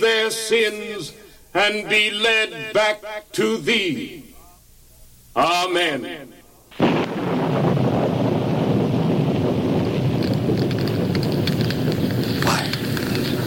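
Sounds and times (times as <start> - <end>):
speech: 0.0 - 4.2, 5.4 - 6.3
fire roaring and crackling as it consumes a sacrifice on an altar: 6.7 - 13.4.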